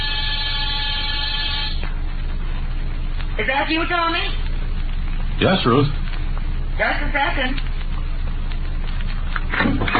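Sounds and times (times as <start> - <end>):
harsh electric apartment door buzzer: 0.0 - 1.8
low hum: 0.0 - 9.9
speech: 3.4 - 4.4, 5.4 - 6.0, 6.8 - 7.6.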